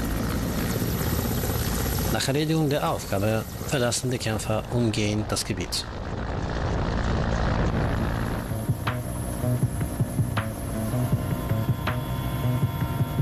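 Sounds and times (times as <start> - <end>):
helicopter hovering during a special-unit operation: 0.0 - 13.2
speech: 2.1 - 6.1.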